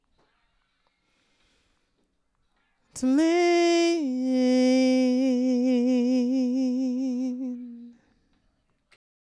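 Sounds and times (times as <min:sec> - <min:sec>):
epic diva vocals: 0:03.0 - 0:08.1.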